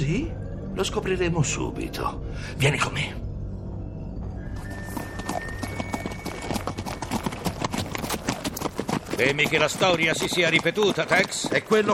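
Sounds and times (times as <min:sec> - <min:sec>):
speech: 0:00.1 - 0:03.2, 0:09.2 - 0:11.9
horse hooves clip-clopping: 0:04.6 - 0:11.9.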